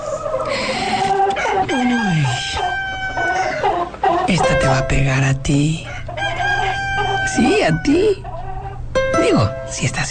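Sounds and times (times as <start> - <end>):
rooster crowing: 0.0 - 4.4, 5.8 - 8.8
speech: 4.9 - 6.0, 7.3 - 8.3, 9.2 - 10.1.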